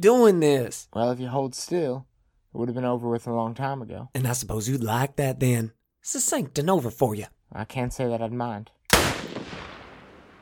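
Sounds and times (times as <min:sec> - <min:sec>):
speech: 0:00.0 - 0:09.2
guns being fired inside a building: 0:08.9 - 0:10.4.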